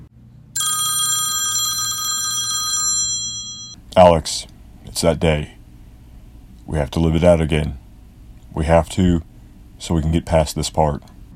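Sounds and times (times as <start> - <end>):
low steady hum: 0.0 - 11.3
telephone bell ringing: 0.6 - 3.8
speech: 4.0 - 5.6, 6.7 - 7.8, 8.5 - 11.1.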